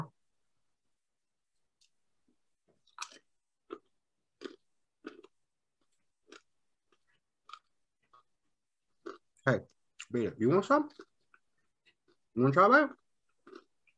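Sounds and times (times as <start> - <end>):
person chewing a mouthful of food: 2.7 - 10.2, 10.9 - 13.9
speech: 9.5 - 11.1, 12.4 - 13.0.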